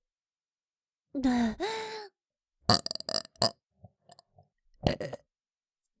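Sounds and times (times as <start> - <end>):
person burping: 1.3 - 1.9, 2.7 - 3.5, 4.9 - 5.2
short throaty gulps and clicks: 2.7 - 3.5, 4.9 - 5.2.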